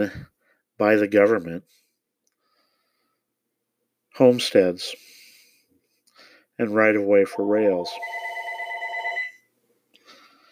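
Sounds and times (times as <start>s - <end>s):
speech: 0.0s - 1.8s, 4.2s - 5.1s, 6.6s - 8.3s
telephone ringing with a trilling electronic tone: 7.3s - 9.5s.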